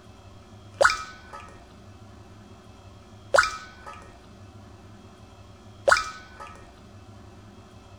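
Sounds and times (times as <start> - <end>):
water dripping: 0.7 - 1.8, 3.4 - 4.4, 5.9 - 6.9.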